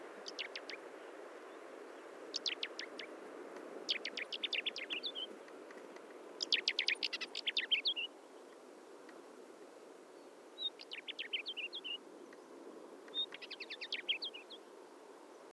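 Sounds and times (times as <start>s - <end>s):
Northern Wheatear singing: 0.2s - 0.8s, 2.3s - 3.1s, 3.9s - 5.3s, 6.4s - 8.1s, 10.6s - 12.0s, 13.1s - 14.7s.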